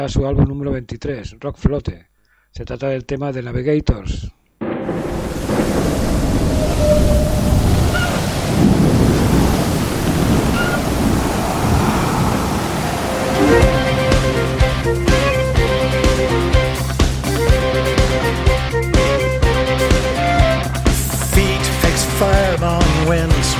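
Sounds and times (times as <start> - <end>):
speech: 0.0 - 5.6
stormy wind: 4.6 - 14.9
roaring surf: 4.6 - 16.0
instrumental rock song led by flute with steady bass: 13.4 - 23.5.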